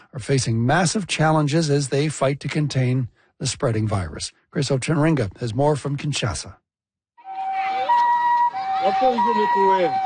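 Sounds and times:
speech: 0.1s - 6.6s, 8.8s - 10.0s
ambulance siren wailing in two high tones: 7.2s - 10.0s
indistinct voices talking: 7.2s - 10.0s.

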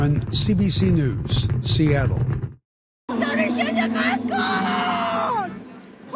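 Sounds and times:
speech: 0.0s - 2.4s, 3.1s - 5.6s
crowd of mourners wailing and shouting at a public funeral in Tehran: 3.1s - 6.1s.

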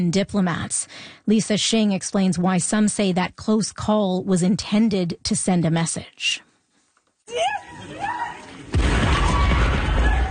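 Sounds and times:
speech: 0.0s - 6.5s, 7.3s - 8.2s
frantic shouting voices: 7.3s - 10.3s
crackling debris: 8.6s - 10.3s
explosion destroying a train: 8.7s - 10.3s.

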